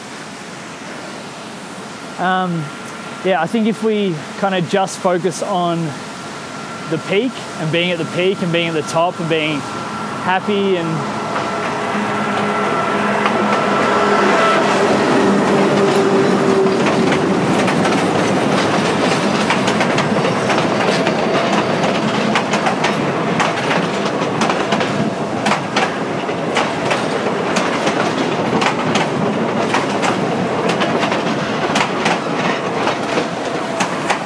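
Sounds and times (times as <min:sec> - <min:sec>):
train passing on Peruvian railway: 0:00.0 - 0:34.2
speech: 0:02.2 - 0:06.1, 0:06.9 - 0:11.5
drawn-out metallic tones: 0:05.6 - 0:19.4
train wheels clacking over rail joints: 0:13.1 - 0:34.2.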